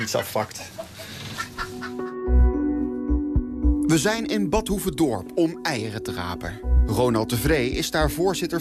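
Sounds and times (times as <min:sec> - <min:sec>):
speech: 0:00.0 - 0:00.8, 0:03.9 - 0:08.5
chickens clucking inside a henhouse on a care farm: 0:00.0 - 0:02.1
low dull thumps: 0:02.4 - 0:03.8.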